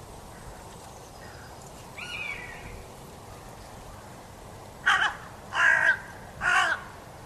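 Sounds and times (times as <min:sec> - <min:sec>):
carrion crow Corvus corone cawing: 0:04.8 - 0:06.9.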